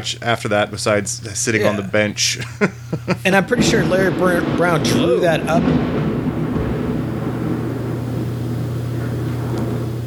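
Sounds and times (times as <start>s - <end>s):
speech: 0.0s - 6.1s
laughter: 1.4s - 4.2s
deep thunder rumbling during a thunderstorm on the East Coast: 3.1s - 10.0s.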